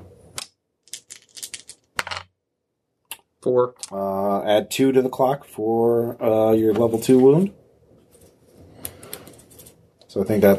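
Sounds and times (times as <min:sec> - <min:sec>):
two dice rolled for a tabletop game: 0:00.4 - 0:02.3
speech: 0:03.4 - 0:07.6, 0:10.2 - 0:10.5.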